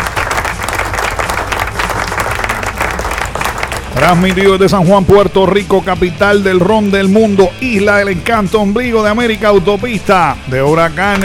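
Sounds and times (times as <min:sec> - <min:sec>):
applause played as a sound effect: 0:00.0 - 0:04.8
speech: 0:04.0 - 0:11.2.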